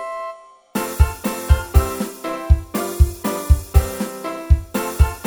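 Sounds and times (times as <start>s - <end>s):
karaoke backing track: 0.8s - 5.2s.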